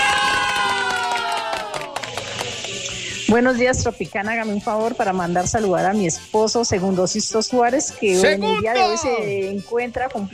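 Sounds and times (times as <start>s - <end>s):
cheering crowd sound effect on a radio show: 0.0s - 2.9s
sharp claps or hits: 0.0s - 3.0s
speech: 3.3s - 10.3s.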